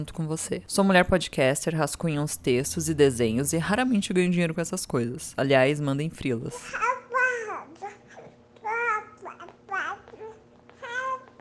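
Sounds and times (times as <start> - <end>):
speech: 0.0 - 7.0
five-month-old baby girl babbling: 6.7 - 11.4.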